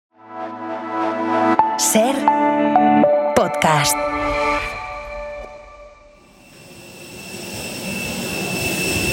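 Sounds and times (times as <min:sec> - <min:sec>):
speech: 0:01.8 - 0:04.7
airliner jet engines whining on an airport runway: 0:04.0 - 0:09.1.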